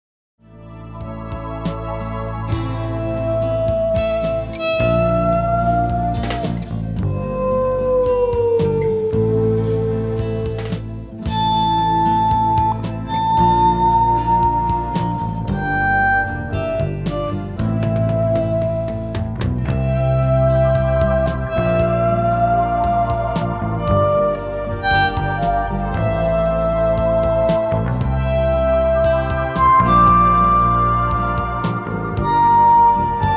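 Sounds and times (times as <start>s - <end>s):
electric guitar solo: 2.2s - 33.3s.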